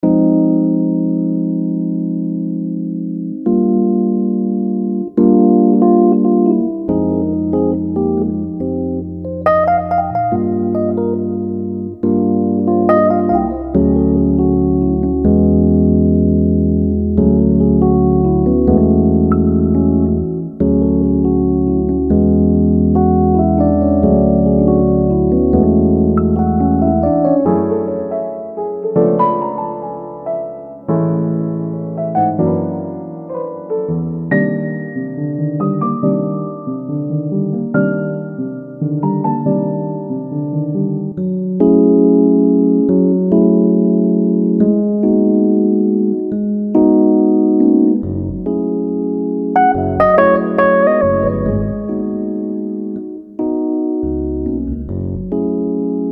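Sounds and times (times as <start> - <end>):
jazzy keyboard playing: 0.0 - 56.1.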